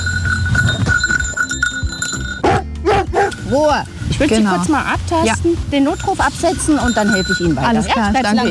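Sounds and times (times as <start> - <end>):
bell ringing with a bright tone: 0.0 - 2.5, 5.8 - 8.4
speech: 3.5 - 8.4.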